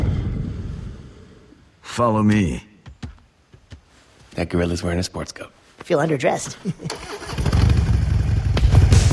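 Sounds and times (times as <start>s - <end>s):
speech: 2.0s - 2.7s, 4.4s - 7.2s
dune buggy engine starting: 6.9s - 9.1s.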